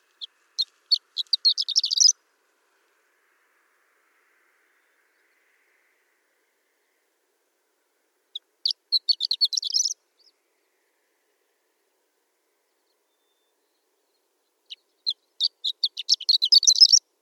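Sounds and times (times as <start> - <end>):
horned lark: 0.0 - 2.2, 8.3 - 10.8, 12.6 - 17.0.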